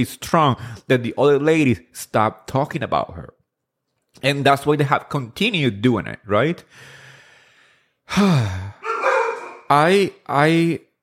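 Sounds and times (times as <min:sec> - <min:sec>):
speech: 0:00.0 - 0:03.4, 0:04.2 - 0:07.0, 0:08.1 - 0:08.8, 0:09.7 - 0:10.9
dogs barking: 0:08.8 - 0:09.8.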